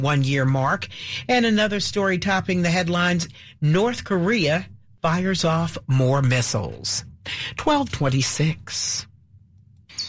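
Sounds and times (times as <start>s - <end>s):
speech: 0.0s - 9.1s
low steady hum: 0.0s - 10.0s.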